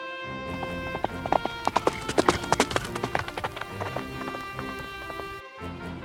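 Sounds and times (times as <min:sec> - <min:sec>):
horse carrying a doctor galloping: 0:00.4 - 0:05.4.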